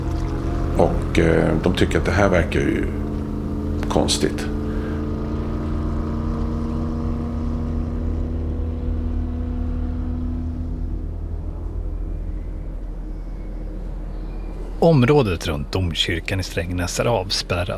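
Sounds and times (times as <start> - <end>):
water wash from a motorboat on a lake: 0.0 - 1.2
white motorboat engine droning on a lake: 0.0 - 17.7
wind: 0.0 - 17.7
speech: 0.8 - 3.0, 3.8 - 4.6, 14.8 - 17.7.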